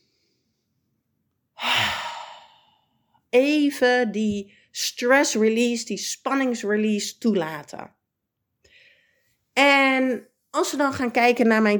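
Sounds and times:
person breathing out during a calming breathing exercise: 1.6 - 3.1
speech: 3.3 - 8.0, 9.6 - 11.7.

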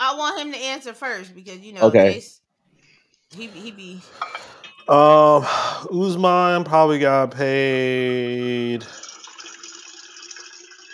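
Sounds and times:
speech: 0.2 - 2.4, 3.3 - 9.0
running water pouring from a tap or into a vessel: 7.8 - 10.9.

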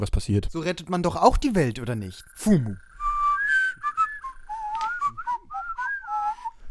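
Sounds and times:
speech: 0.0 - 2.9
person whistling a cheerful tune: 3.0 - 6.6
breaths between phrases: 6.4 - 6.6.

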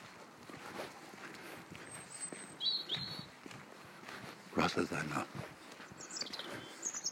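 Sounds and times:
footsteps: 0.0 - 7.1
chaffinch singing: 2.0 - 3.3, 5.9 - 7.1
speech: 4.7 - 5.6.

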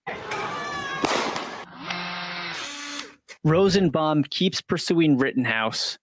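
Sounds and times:
gunshot fired into the air: 1.0 - 1.6
speech: 3.4 - 6.0.

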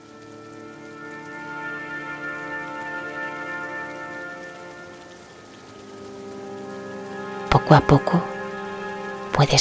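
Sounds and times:
soft steady rain pattering: 0.0 - 9.5
sustained mellow tonal drone: 0.0 - 9.5
speech: 7.7 - 8.3, 9.4 - 9.5.

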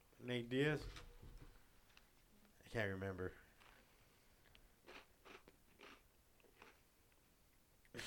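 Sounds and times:
speech: 0.2 - 1.1, 2.7 - 3.4
chips crunching as someone eats: 4.8 - 6.8.

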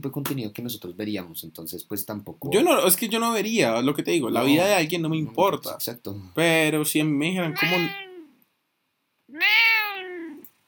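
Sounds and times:
speech: 0.0 - 8.1
cat meowing: 7.4 - 8.4, 9.3 - 10.5.

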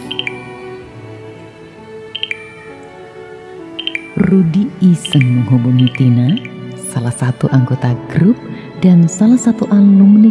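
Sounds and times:
short bright phone notification beeps: 0.0 - 0.9, 2.2 - 3.1, 3.8 - 6.9
speech: 4.3 - 10.2.

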